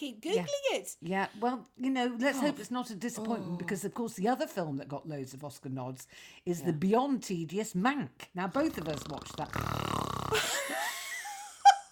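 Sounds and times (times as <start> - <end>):
speech: 0.0 - 10.6
two people imitating snoring with their voices: 8.5 - 10.5.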